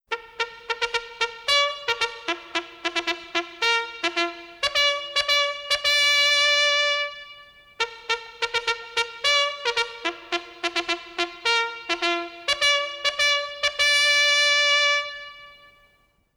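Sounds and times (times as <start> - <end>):
hunting horn call: 0.1 - 16.3.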